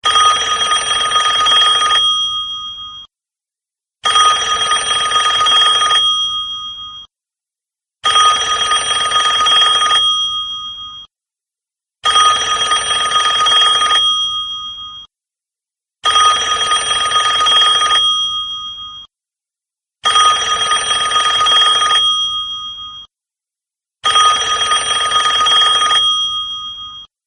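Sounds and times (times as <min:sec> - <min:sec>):
iPhone 3G bell ringtone: 0:00.0 - 0:03.1, 0:04.0 - 0:07.1, 0:08.0 - 0:11.1, 0:12.0 - 0:15.1, 0:16.0 - 0:19.1, 0:20.0 - 0:23.1, 0:24.0 - 0:27.1.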